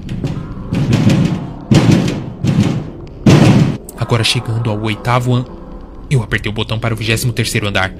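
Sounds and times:
loud heavy banging on a door: 0.0s - 3.8s
speech: 4.1s - 7.9s.

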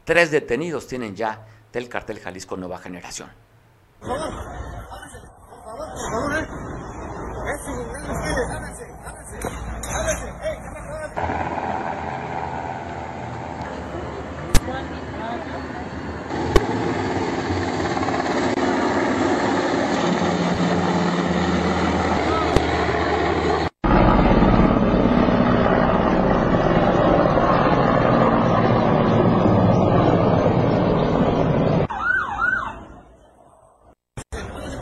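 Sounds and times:
speech: 0.1s - 3.4s, 4.0s - 4.6s, 6.0s - 6.6s
helicopters droning overhead during an authorities' operation: 4.0s - 33.3s
siren wailing: 19.5s - 23.0s, 23.9s - 33.2s.

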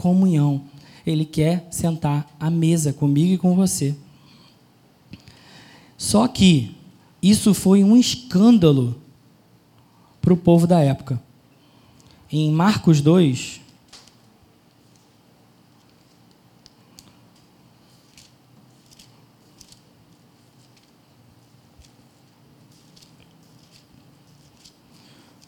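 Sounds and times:
speech: 0.0s - 4.0s, 6.0s - 9.0s, 10.2s - 11.3s, 12.3s - 13.6s
quiet low hum: 0.0s - 25.4s
thin Bible pages being flipped: 15.8s - 25.4s.

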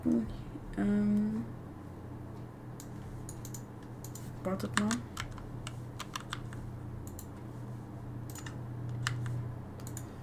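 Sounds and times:
speech: 0.0s - 1.0s, 4.4s - 5.1s
low hum: 0.0s - 10.2s
typing on a computer keyboard: 3.3s - 7.3s, 8.3s - 10.1s.

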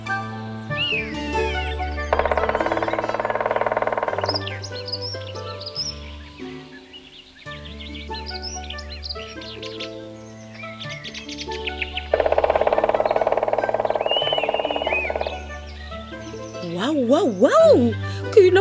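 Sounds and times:
steady music: 0.0s - 18.5s
bird-like chirps and squeaks: 0.8s - 16.9s
green woodpecker drumming on a tree trunk: 1.5s - 5.4s, 11.5s - 16.2s.

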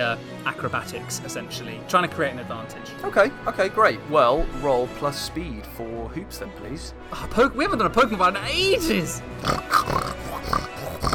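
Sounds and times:
speech: 0.0s - 10.6s
voice imitating a pig knight snorting and squealing: 9.4s - 11.1s.

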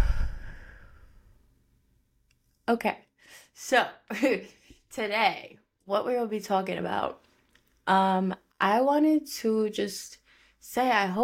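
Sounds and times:
deep breath let out in a breathy sigh: 0.0s - 1.3s
speech: 2.7s - 7.3s, 7.9s - 11.2s.

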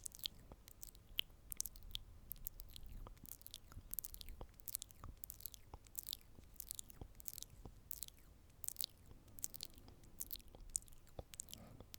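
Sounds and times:
chewing-like crunches: 0.0s - 11.9s
up-close wet mouth clicks and smacks: 0.0s - 11.9s.

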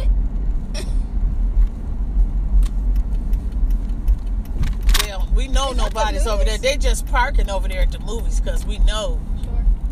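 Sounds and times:
car driving slowly with low engine and road rumble: 0.0s - 9.8s
speech: 5.6s - 9.3s.

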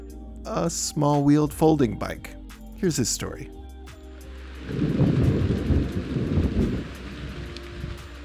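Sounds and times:
speech: 0.4s - 3.6s, 4.7s - 5.0s
steady rain in cold winter weather in Denmark: 4.2s - 8.2s
heavy low-frequency wind buffeting the microphone in Denmark: 4.3s - 8.2s.

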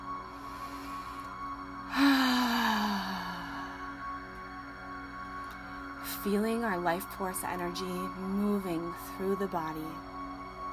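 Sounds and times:
humming musical drone: 0.0s - 10.7s
deep breath in during a guided meditation: 0.4s - 4.2s
speech: 6.2s - 10.1s.

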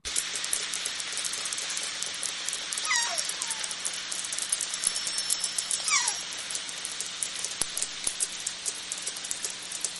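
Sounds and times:
killer whale echolocation clicks: 0.0s - 9.9s
descending whistle-like killer whale calls: 2.8s - 3.8s, 4.9s - 6.2s.

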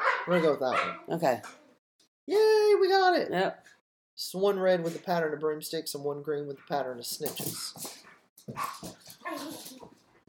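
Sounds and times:
dog barking: 0.0s - 1.1s, 8.5s - 9.6s
speech: 0.2s - 1.6s, 2.3s - 10.0s.

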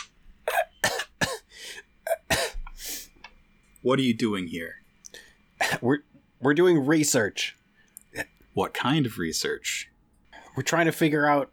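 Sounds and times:
man choking coughs with throat closing up: 0.5s - 2.7s, 5.6s - 5.8s
man raspy throat clearing: 0.5s - 2.8s, 5.6s - 5.9s
speech: 3.8s - 4.8s, 5.8s - 7.6s, 8.2s - 9.7s, 10.6s - 11.5s.

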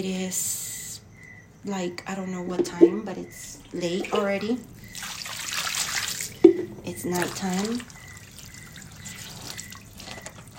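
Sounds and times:
speech: 0.0s - 0.6s, 1.6s - 5.2s, 6.9s - 8.0s
water dripping and splashing outdoors: 2.5s - 10.5s.

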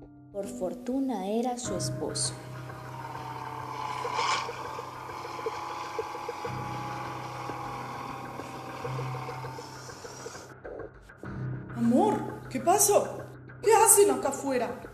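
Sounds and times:
speech: 0.4s - 2.6s, 12.6s - 14.9s
approaching car engine rumbling: 2.2s - 10.8s.

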